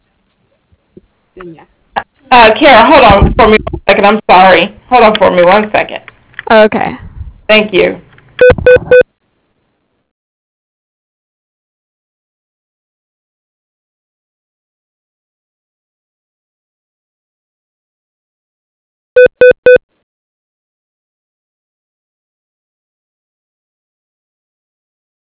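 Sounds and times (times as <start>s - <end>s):
speech: 1.4s - 8.0s
telephone dialing beeps: 8.4s - 9.0s, 19.2s - 19.8s.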